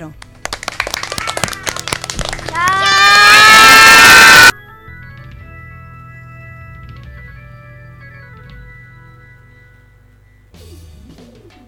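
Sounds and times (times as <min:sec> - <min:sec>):
primary schoolchildren clapping: 0:00.2 - 0:04.5
primary schoolchildren cheering and shouting: 0:02.5 - 0:04.5.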